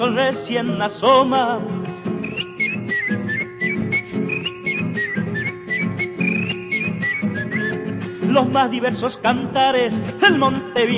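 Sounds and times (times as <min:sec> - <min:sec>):
speech: 0:00.0 - 0:01.9, 0:08.4 - 0:10.9
rhythmic strummed music: 0:00.0 - 0:10.9
whistled melody of bird-like phrases imitating birdsong: 0:02.2 - 0:08.0.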